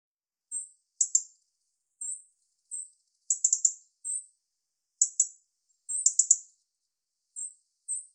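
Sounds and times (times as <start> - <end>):
European robin singing: 0.5 - 8.1.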